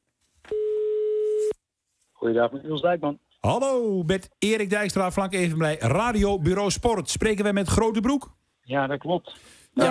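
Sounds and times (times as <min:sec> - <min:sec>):
telephone ringing tone while placing a call: 0:00.5 - 0:01.5
speech: 0:02.2 - 0:09.8.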